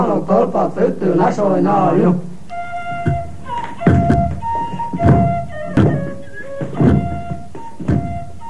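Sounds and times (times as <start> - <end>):
speech: 0.2 - 2.3, 3.0 - 3.2
sustained melodic tune: 2.5 - 8.4
sharp wooden knocks: 2.9 - 8.4.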